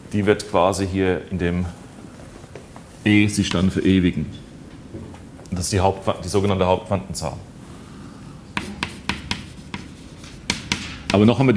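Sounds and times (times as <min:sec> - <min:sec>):
speech: 0:00.1 - 0:01.8, 0:03.0 - 0:07.5, 0:11.1 - 0:11.5
writing strokes on a board during a physics lecture: 0:08.6 - 0:11.3.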